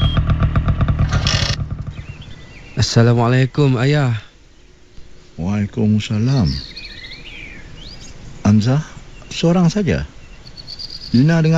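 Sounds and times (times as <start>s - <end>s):
motorcycle engine arriving: 0.0s - 2.6s
speech: 2.8s - 4.2s, 5.4s - 6.7s, 8.5s - 10.2s, 11.1s - 11.5s.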